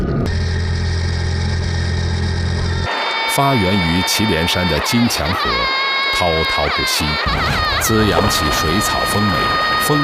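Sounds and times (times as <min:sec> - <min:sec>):
motorcycle engine running as a herder rides to search for missing cattle: 0:00.0 - 0:02.9
speech: 0:03.4 - 0:10.0.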